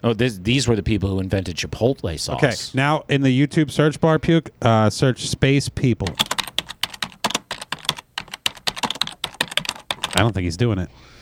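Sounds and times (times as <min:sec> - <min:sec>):
speech: 0:00.0 - 0:06.3, 0:10.2 - 0:11.1
rapid typing on a computer keyboard: 0:06.0 - 0:10.3.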